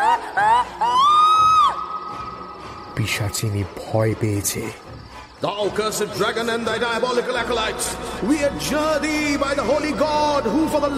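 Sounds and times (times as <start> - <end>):
woman's shrill scream recoiling against a tomb: 0.0 - 2.0
speech: 3.0 - 10.9.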